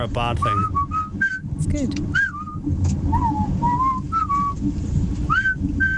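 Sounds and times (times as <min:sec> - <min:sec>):
speech: 0:00.0 - 0:04.0
low rumble: 0:00.0 - 0:05.9
person whistling a tune: 0:00.4 - 0:01.5, 0:02.1 - 0:04.6, 0:05.3 - 0:05.9.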